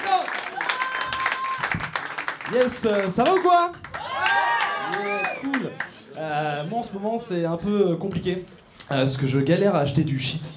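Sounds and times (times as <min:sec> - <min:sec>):
audience clapping: 0:00.0 - 0:06.0
speech: 0:02.5 - 0:03.9, 0:05.0 - 0:10.5.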